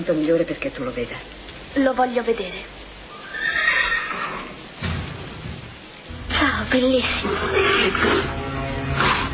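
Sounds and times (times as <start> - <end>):
speech: 0.0 - 2.8, 6.7 - 9.2
horse neighing: 3.1 - 4.6.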